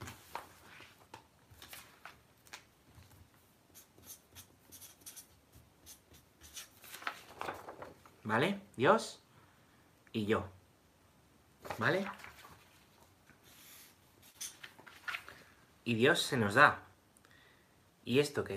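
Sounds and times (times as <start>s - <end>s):
ballpoint pen scratching and scribbling a drawing across sheets of paper: 3.7s - 6.7s
speech: 8.3s - 9.2s, 10.1s - 10.6s, 11.8s - 12.2s, 15.9s - 16.9s, 18.1s - 18.5s.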